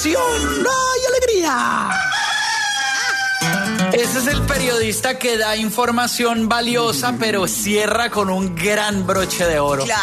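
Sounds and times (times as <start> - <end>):
speech: 0.0 - 2.0, 3.4 - 10.0
rooster crowing: 1.7 - 3.8.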